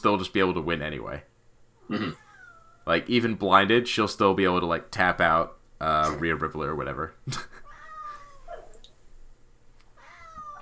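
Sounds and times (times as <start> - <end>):
speech: 0.0 - 1.3, 1.9 - 2.2, 2.9 - 7.6
low room noise: 0.0 - 10.6
cat meowing: 1.8 - 2.9, 7.6 - 8.8, 10.0 - 10.6.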